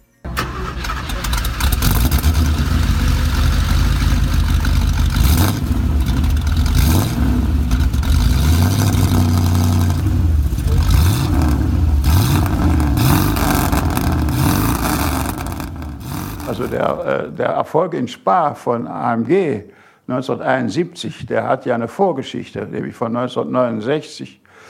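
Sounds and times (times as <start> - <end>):
vintage racing car engine starting and revving: 0.6 - 17.1
speech: 16.6 - 24.4.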